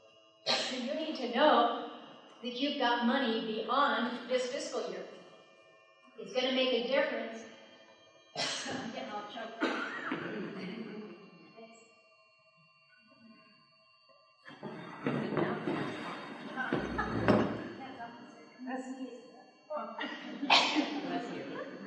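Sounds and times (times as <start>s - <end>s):
speech: 0.7s - 5.2s, 6.2s - 7.5s, 8.4s - 10.7s
person sneezing loudly: 8.4s - 8.9s, 20.5s - 20.9s
laughter: 9.6s - 11.2s, 14.5s - 17.8s, 20.0s - 21.8s.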